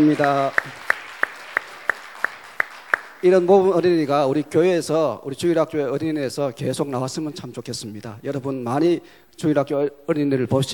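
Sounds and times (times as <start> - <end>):
speech: 0.0 - 0.8, 3.2 - 10.7
clapping in unison at a church children's service: 0.0 - 3.3.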